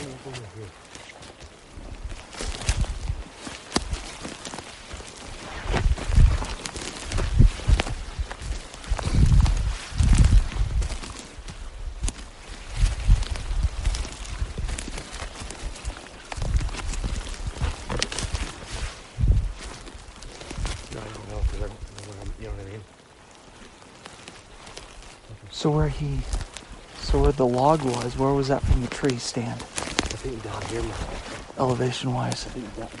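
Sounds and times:
horses walking with hooves clip-clopping over soft ground: 0.0 - 32.9
speech: 25.6 - 26.4, 27.1 - 32.9.

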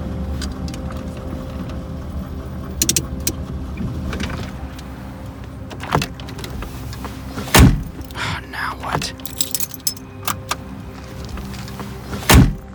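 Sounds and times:
car engine rumbling while pulling over to a stop in a warehouse district: 0.0 - 12.6
sharp mechanical clunks: 2.8 - 3.4, 7.4 - 8.2, 12.1 - 12.6
loud thump: 7.5 - 8.0, 12.2 - 12.6.

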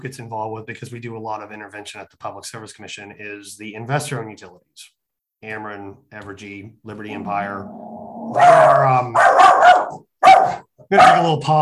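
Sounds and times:
speech: 0.0 - 11.6
dog barking: 8.3 - 11.4.

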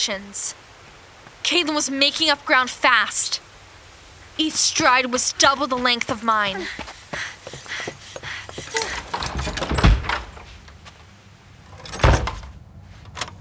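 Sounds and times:
speech: 0.0 - 0.7, 1.4 - 3.5, 4.4 - 7.2
rustling and scraping: 5.6 - 11.1
door being locked with clattering and a solid knock: 7.6 - 10.4, 11.8 - 12.4
house back door slamming shut with a heavy thunk: 8.7 - 10.4, 11.8 - 12.5.

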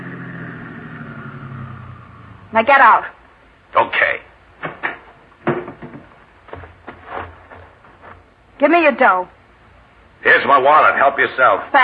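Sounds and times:
car engine idling as the car stops: 0.0 - 3.0
speech: 2.5 - 4.2, 8.6 - 9.4, 10.2 - 11.8.

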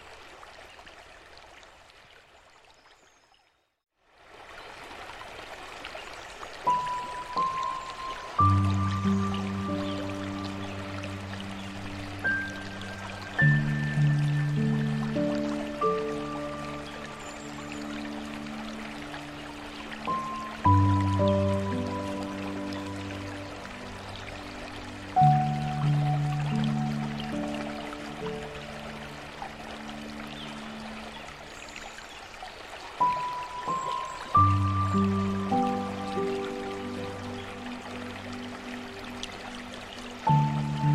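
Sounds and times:
water: 0.0 - 40.9
piano music: 6.7 - 31.0, 33.0 - 40.9.

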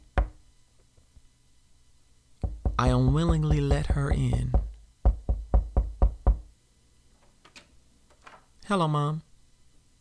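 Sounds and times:
woman knocking on a door: 2.4 - 6.5
speech: 2.8 - 4.6, 8.7 - 9.3.

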